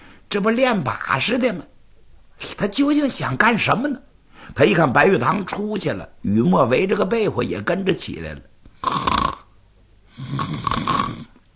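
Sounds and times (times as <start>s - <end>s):
speech: 0.3s - 1.7s, 2.4s - 9.1s
child pretending to snore while standing: 8.8s - 9.5s, 10.1s - 11.4s.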